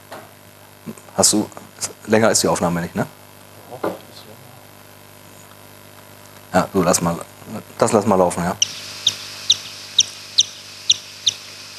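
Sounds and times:
faint low hum: 0.6 - 11.7
speech: 0.8 - 3.2, 6.7 - 8.9
brown long-eared bat echolocation calls slowed down: 8.6 - 11.7.

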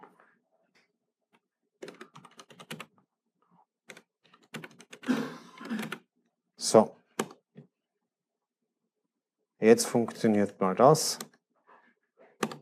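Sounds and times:
rapid keystrokes on a computer keyboard: 1.8 - 2.9, 3.9 - 6.0, 12.4 - 12.6
speech: 6.7 - 7.0, 9.6 - 11.3.

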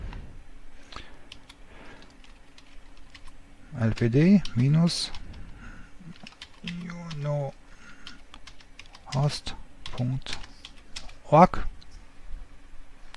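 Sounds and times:
typing on a computer keyboard: 0.9 - 3.4, 6.1 - 11.3
speech: 3.8 - 5.2, 9.3 - 9.6, 11.3 - 11.7.

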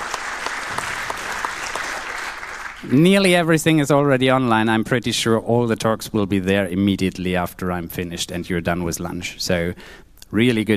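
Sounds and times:
conference audience applause: 0.0 - 2.9
speech: 2.8 - 10.7.

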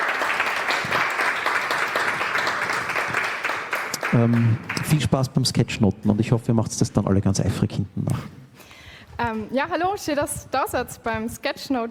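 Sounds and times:
audience applause at a sketchnote workshop: 0.0 - 5.3
speech: 4.1 - 8.4, 9.3 - 11.9.

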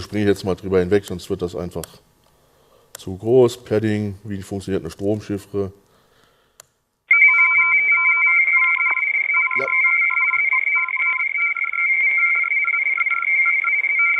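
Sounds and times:
speech: 0.0 - 2.1, 3.0 - 5.8
Morse code beeps at two pitches: 7.1 - 14.1
continuous high steady tone: 7.1 - 14.1.

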